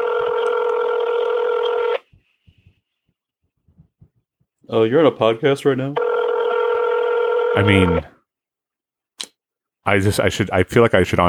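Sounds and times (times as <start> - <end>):
telephone touch-tone dialing: 0.0 - 2.0, 6.0 - 8.1
speech: 4.7 - 6.1, 7.6 - 8.1, 9.8 - 11.2.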